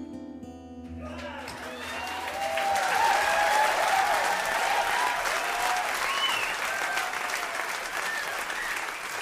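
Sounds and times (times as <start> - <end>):
cheering: 1.0 - 9.2
live audience applauding after a song: 1.0 - 9.2
faint whistles: 6.0 - 6.7, 8.0 - 9.2.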